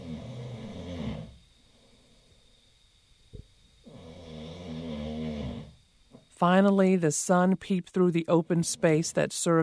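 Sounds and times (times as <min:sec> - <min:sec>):
person snoring with loud rasping snores: 0:00.0 - 0:01.4, 0:03.8 - 0:05.8
speech: 0:06.4 - 0:09.6.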